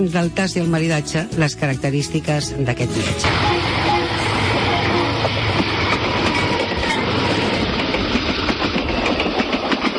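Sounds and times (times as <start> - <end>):
speech: 0.0 - 4.0
interior of a passenger train travelling to La Rioja, rumbling roar: 2.9 - 9.9.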